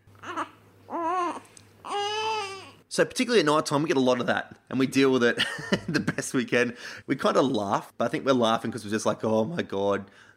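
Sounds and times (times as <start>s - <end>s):
infant twin boys babbling and crying: 0.2s - 2.8s
speech: 3.0s - 10.3s.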